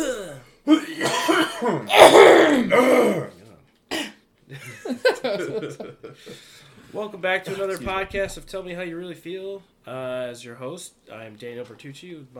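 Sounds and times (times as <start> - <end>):
man clearing his throat: 0.0 - 4.2
man coughing: 0.0 - 4.2
laughter: 4.5 - 6.4
speech: 5.6 - 12.3.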